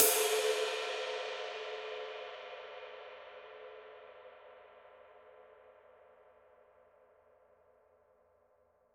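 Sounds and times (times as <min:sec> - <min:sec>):
Paiste Twenty Master Dark ride cymbal: 0:00.0 - 0:01.8.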